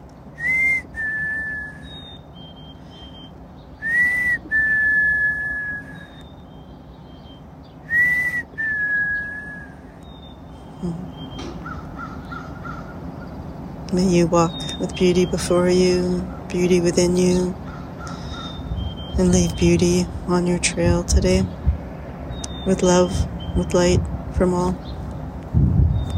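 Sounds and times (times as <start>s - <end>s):
low steady rumble: 0.0s - 26.1s
chickadees singing their whistled song: 0.3s - 12.7s, 14.2s - 16.5s, 17.2s - 20.1s, 22.3s - 24.0s
faint high whistles: 0.4s - 10.3s
speech: 14.0s - 17.6s, 19.2s - 21.6s, 22.6s - 25.0s.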